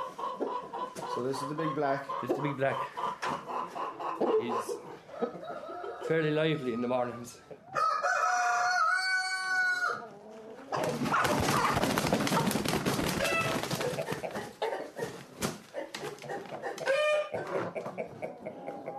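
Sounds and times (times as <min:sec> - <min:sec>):
championship hens clucking and squawking in crates: 0:00.0 - 0:18.9
speech: 0:01.2 - 0:03.4, 0:04.2 - 0:04.8, 0:06.1 - 0:07.5
championship rooster crowing: 0:07.7 - 0:10.0.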